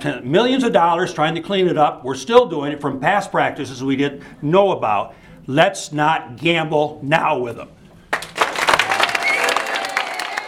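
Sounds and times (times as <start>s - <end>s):
speech: 0.0s - 7.8s
crowd clapping loudly at a meeting: 8.1s - 10.4s
crowd cheering and whooping at a meeting: 8.7s - 10.4s.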